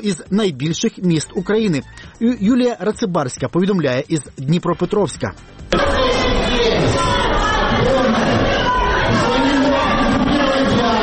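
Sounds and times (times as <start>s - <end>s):
speech: 0.0s - 6.0s
crowd in a hall shouting during a mayor's swearing-in: 5.7s - 11.0s.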